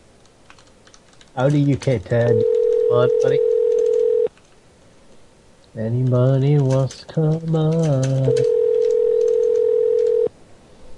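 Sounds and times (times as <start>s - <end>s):
faint hiss: 0.0s - 10.9s
speech: 1.4s - 3.5s, 5.8s - 8.6s
call-in phone line electronic tone: 2.3s - 4.3s, 8.2s - 10.3s.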